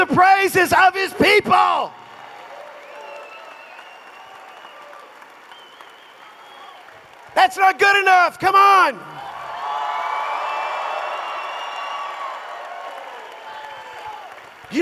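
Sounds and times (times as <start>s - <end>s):
speech: 0.4s - 2.0s, 7.4s - 9.3s
audience applauding in a reverberant hall: 1.9s - 8.1s, 9.1s - 14.8s.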